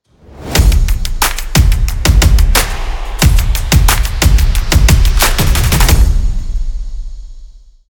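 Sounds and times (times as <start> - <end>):
energetic percussion: 0.2 - 7.8.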